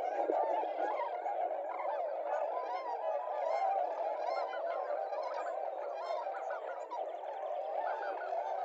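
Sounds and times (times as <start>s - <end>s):
massed flock of tundra swans hooting and yelping: 0.0s - 8.6s.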